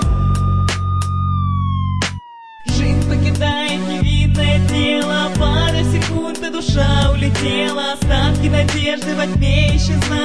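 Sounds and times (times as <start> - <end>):
police siren wailing: 0.0 - 4.2
thumping bass-heavy beat with sharp percussive hits: 0.0 - 10.2
speech: 6.0 - 10.2.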